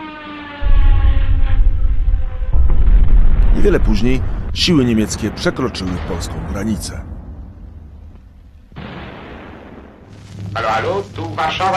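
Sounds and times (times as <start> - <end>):
siren-like wailing tone: 0.0 - 3.7
sustained low roar: 0.6 - 6.1
heavy artillery shelling booms from a battleship opening fire: 0.6 - 10.2
speech: 3.6 - 7.1, 10.8 - 11.7.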